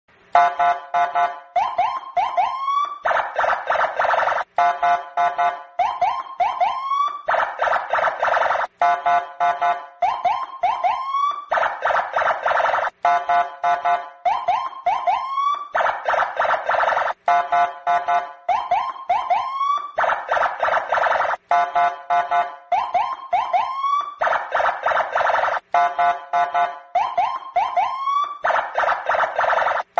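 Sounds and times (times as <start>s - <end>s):
police car siren: 0.4s - 29.9s.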